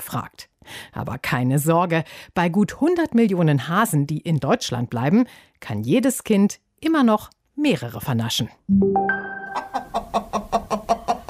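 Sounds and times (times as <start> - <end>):
speech: 0.1 - 10.2
brooding hen clucking while sitting on an egg: 9.6 - 11.2.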